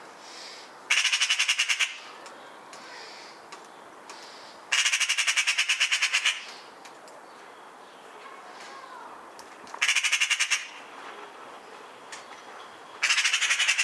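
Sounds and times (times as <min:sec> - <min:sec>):
Eurasian magpie Pica pica chattering: 0:00.9 - 0:02.1, 0:04.7 - 0:06.6, 0:09.8 - 0:10.8, 0:13.0 - 0:13.8.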